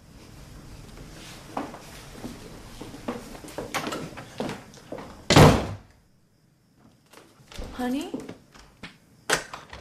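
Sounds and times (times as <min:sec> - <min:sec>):
footsteps: 0:00.8 - 0:05.2
study door slamming shut: 0:05.3 - 0:05.9
speech: 0:07.8 - 0:08.2.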